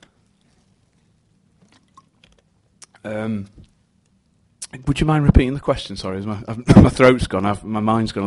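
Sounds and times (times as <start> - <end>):
person drinking water with a gulping slurp: 1.5 - 3.8
speech: 3.0 - 3.7, 4.7 - 8.2.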